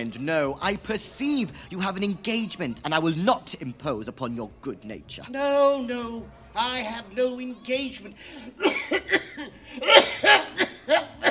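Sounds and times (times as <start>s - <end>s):
speech: 0.0s - 11.1s
laughter: 7.9s - 11.3s
person having a hacking coughing fit: 8.6s - 10.8s.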